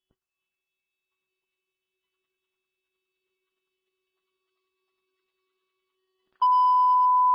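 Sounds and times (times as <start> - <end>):
radio dispatch alert beep tone: 6.4 - 7.3.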